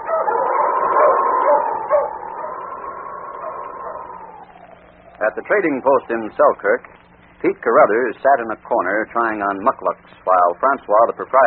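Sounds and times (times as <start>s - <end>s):
dog howling: 0.0s - 6.5s
speech: 5.3s - 11.4s.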